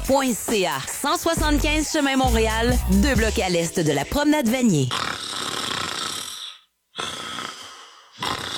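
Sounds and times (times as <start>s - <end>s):
speech: 0.1s - 5.2s
person snoring: 4.9s - 8.5s.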